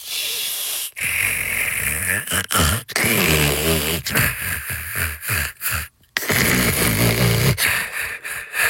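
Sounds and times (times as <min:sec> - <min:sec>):
person snoring loudly: 0:00.0 - 0:08.6.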